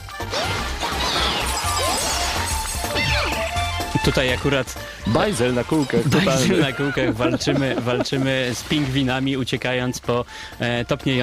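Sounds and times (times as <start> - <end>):
video game music with a pulsing bassline: 0.0 - 11.2
speech: 4.1 - 11.2
laughter: 5.1 - 8.6.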